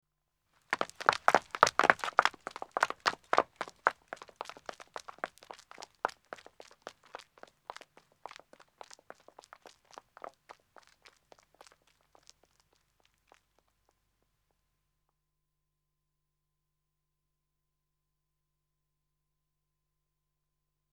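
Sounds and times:
two women running footsteps on a country road: 0:00.7 - 0:12.8.

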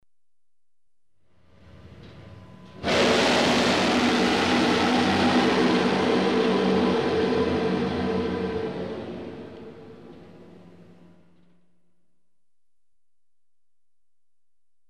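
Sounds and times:
German U-boat blowing ballast: 0:02.8 - 0:10.2.

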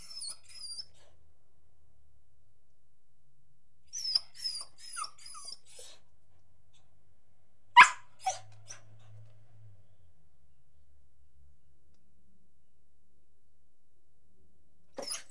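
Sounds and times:
beagle giving high drawn-out whines: 0:00.0 - 0:01.1, 0:03.9 - 0:06.0, 0:07.8 - 0:08.9, 0:15.0 - 0:15.2
beagle sharp loud bark: 0:07.8 - 0:08.4, 0:15.0 - 0:15.2.

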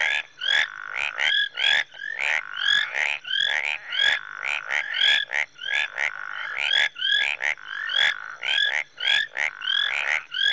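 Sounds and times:
tree frogs calling in a marsh in Rwanda in early evening: 0:00.0 - 0:10.5.

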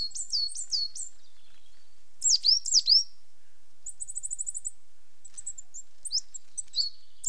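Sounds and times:
coal tits calling while displaying on a territorial boundary: 0:00.0 - 0:01.2, 0:02.2 - 0:03.1, 0:03.8 - 0:07.2.

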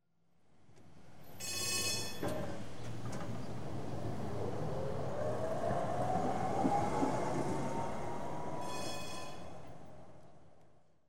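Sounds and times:
tram exterior doors closing: 0:01.4 - 0:10.1
tram bell: 0:08.6 - 0:09.7.

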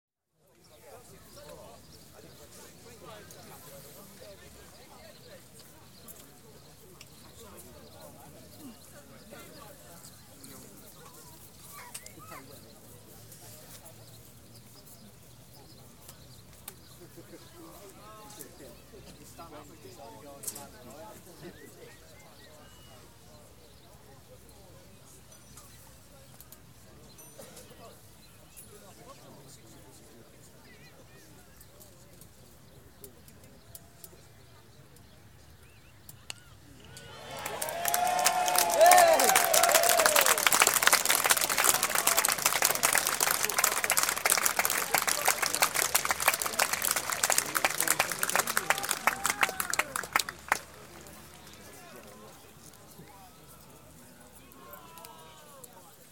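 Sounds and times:
sports crowd at a county cricket match in Clarence Park St Albans: 0:00.3 - 0:56.1.

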